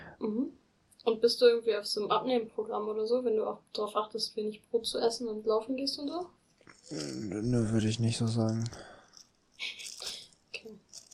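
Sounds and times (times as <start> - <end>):
speech: 0.2 - 8.9
plastic bag holding two screws crinkling as it is opened and handled: 8.2 - 11.1.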